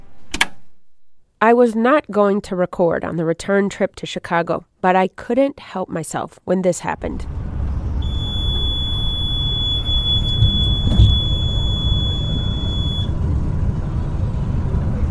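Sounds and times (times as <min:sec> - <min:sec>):
speech: 0:01.4 - 0:07.4
constant low rumble of a moving bus: 0:07.0 - 0:15.0
bus speed-limit warning alarm beeping: 0:07.9 - 0:13.2.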